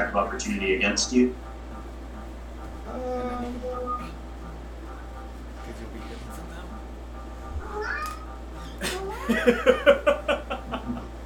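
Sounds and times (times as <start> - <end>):
speech: 0.0 - 1.5, 2.9 - 4.1, 9.4 - 10.2
low hum: 0.0 - 11.2
house cat meowing: 7.6 - 8.4
laughter: 8.8 - 11.2.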